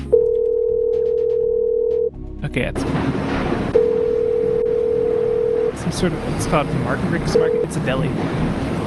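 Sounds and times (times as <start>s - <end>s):
telephone dial tone after dialing: 0.2s - 2.1s, 3.8s - 5.8s
speech: 2.6s - 3.4s, 5.9s - 8.8s.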